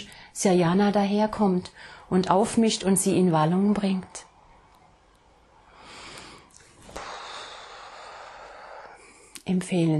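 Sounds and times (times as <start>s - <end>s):
speech: 0.0s - 4.2s, 9.5s - 9.9s
deep airy breathing to calm down: 5.4s - 9.4s.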